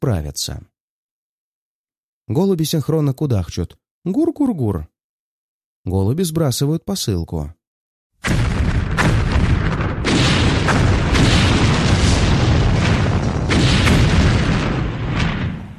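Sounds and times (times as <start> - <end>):
speech: 0.0 - 0.8, 2.3 - 4.9, 5.8 - 7.6, 8.2 - 8.5
several dull heavy explosions: 8.2 - 15.7.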